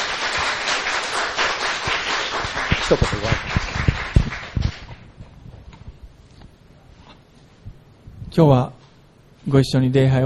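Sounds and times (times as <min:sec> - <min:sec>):
room full of people applauding: 0:00.0 - 0:05.0
speech: 0:02.9 - 0:03.6, 0:08.4 - 0:08.8, 0:09.4 - 0:10.2.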